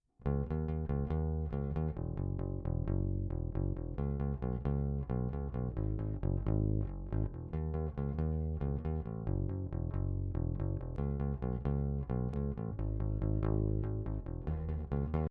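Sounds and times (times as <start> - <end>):
bass: 0.2 - 15.2.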